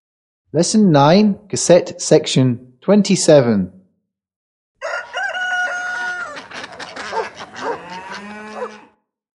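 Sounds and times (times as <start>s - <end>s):
speech: 0.5s - 3.8s
hen crowing: 4.8s - 9.0s.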